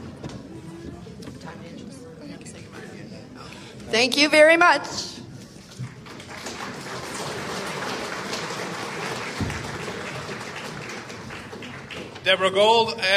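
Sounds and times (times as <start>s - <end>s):
speech: 3.9s - 5.1s, 12.3s - 13.1s
crowd applauding: 5.7s - 12.6s.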